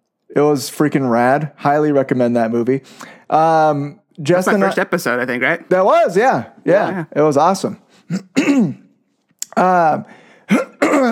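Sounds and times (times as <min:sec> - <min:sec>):
speech: 0:00.3 - 0:08.8, 0:09.6 - 0:11.1
person clearing throat with gravelly grunts: 0:08.1 - 0:08.9, 0:10.5 - 0:11.1.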